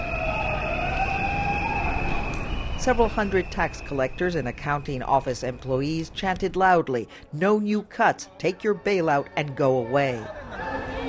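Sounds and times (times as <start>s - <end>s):
sirens at a workers' protest: 0.0s - 5.6s
speech: 2.8s - 10.7s.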